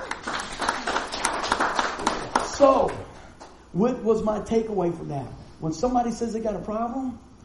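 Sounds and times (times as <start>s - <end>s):
group of people clapping: 0.0s - 3.6s
speech: 2.6s - 3.1s, 3.7s - 7.3s.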